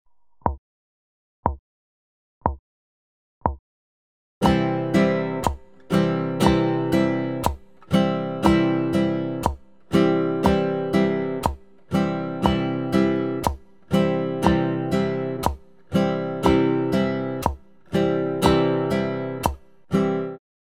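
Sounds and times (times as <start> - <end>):
instrument strumming: 4.4 - 20.4.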